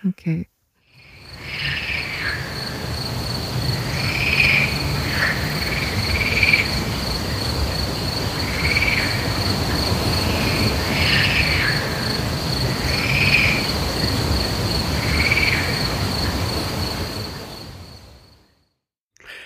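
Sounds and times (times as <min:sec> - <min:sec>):
speech: 0:00.0 - 0:00.5
toad calling: 0:00.9 - 0:02.9, 0:03.7 - 0:14.1
steady high cricket trill at an outdoor pond: 0:00.9 - 0:18.5.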